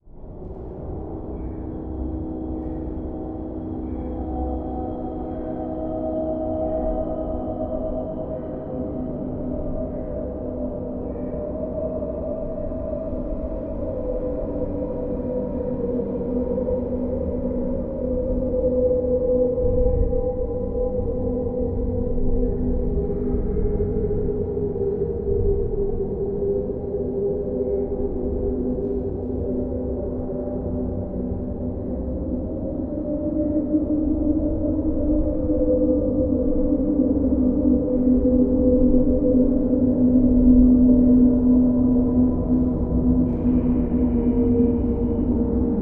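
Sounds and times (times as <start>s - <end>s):
constant evolving moaning drone: 0.2s - 45.8s.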